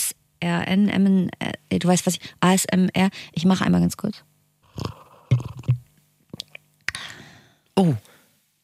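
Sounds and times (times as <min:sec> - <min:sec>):
speech: 0:00.4 - 0:05.0, 0:07.8 - 0:08.1
slurping tea: 0:04.6 - 0:05.8
gulping mouth noises: 0:04.6 - 0:06.7.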